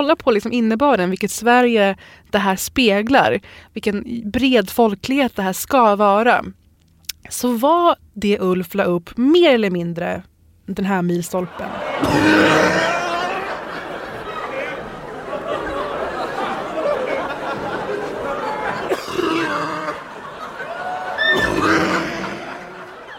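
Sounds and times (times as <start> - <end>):
speech: 0.0 - 6.6, 7.2 - 12.9
scattered snickering laughter: 11.6 - 23.1
crowd chatter: 11.7 - 23.1
sharp exaggerated comedic coughs: 12.0 - 13.4, 18.8 - 20.2, 21.3 - 22.9.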